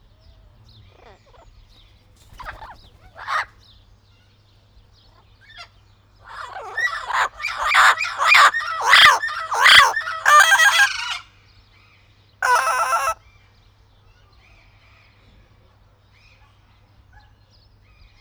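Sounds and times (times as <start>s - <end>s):
blue-fronted Amazon parrot calling in a zoo: 2.3s - 3.5s, 6.2s - 11.2s, 12.4s - 13.2s.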